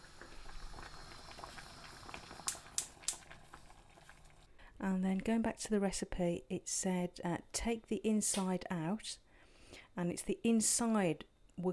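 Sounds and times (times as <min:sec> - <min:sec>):
water with lemon boiling in a pan: 0:00.0 - 0:04.7
speech: 0:04.8 - 0:09.2, 0:10.0 - 0:11.7.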